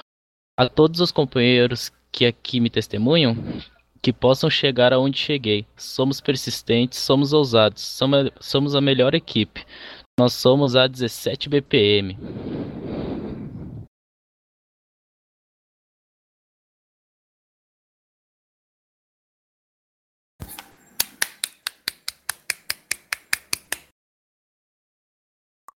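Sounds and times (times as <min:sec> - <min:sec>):
speech: 0:00.6 - 0:12.6
one person clapping hands at a military ceremony: 0:21.0 - 0:23.9.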